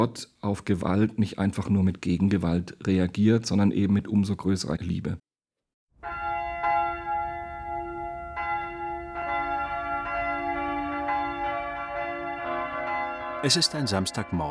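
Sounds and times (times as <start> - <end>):
speech: 0.0 - 5.2, 13.4 - 14.4
several large cathedral bells ringing in Würzburg city centre, Germany: 6.0 - 14.4.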